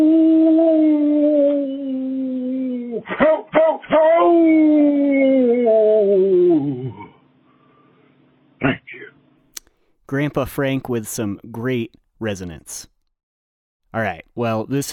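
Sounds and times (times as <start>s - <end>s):
grandfather imitating a coyote howl in a voicemail message: 0.0s - 7.2s
speech: 10.2s - 12.9s, 13.9s - 14.9s.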